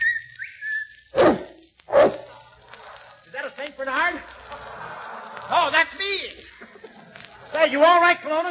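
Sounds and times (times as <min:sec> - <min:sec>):
person whistling to call a dog: 0:00.0 - 0:01.4
dog barking: 0:01.2 - 0:02.4
laughter: 0:02.2 - 0:08.4
speech: 0:07.6 - 0:08.4.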